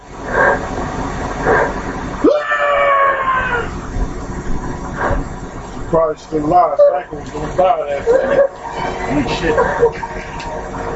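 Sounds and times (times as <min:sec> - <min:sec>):
rough noisy background: 0:00.0 - 0:10.9
person screaming: 0:02.2 - 0:03.7
speech: 0:06.1 - 0:10.4
laughter: 0:06.6 - 0:10.9.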